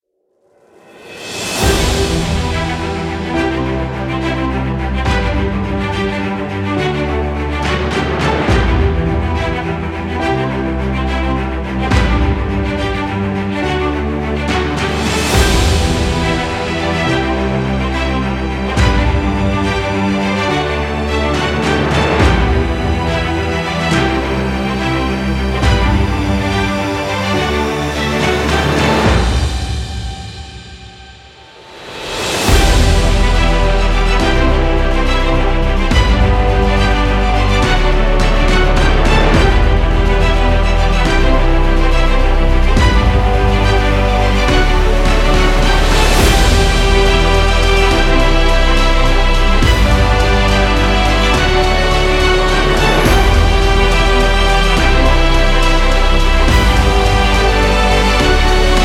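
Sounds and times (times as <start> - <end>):
heroic cinematic background music: 0.6 - 58.8.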